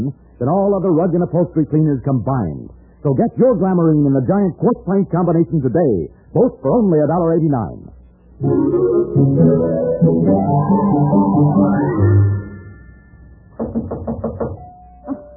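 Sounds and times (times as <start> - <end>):
speech: 0.0 - 12.1, 13.7 - 14.4
short sustained tone: 8.4 - 13.6
music: 8.4 - 15.3
firm knocks on a door: 13.6 - 14.6.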